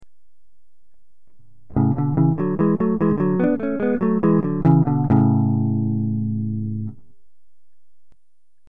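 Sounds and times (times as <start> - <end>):
guitar playing in Ionian Phrygian mode: 1.7 - 7.1.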